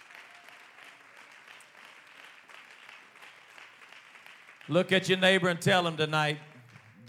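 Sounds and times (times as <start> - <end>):
church audience clapping in praise: 0.0 - 7.0
speech: 4.7 - 6.5.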